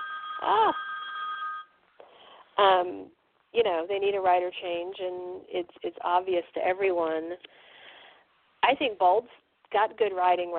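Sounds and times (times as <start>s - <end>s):
telephone ringing with a steady electronic tone: 0.0s - 1.8s
speech: 0.4s - 0.9s, 2.6s - 7.7s, 8.7s - 10.5s.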